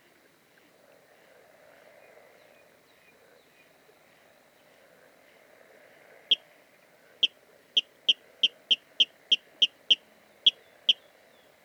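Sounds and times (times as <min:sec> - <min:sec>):
water rail sharp kip calls: 0:07.2 - 0:11.1.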